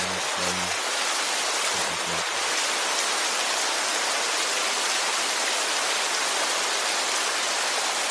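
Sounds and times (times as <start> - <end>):
steady dense rain pouring: 0.0 - 8.1.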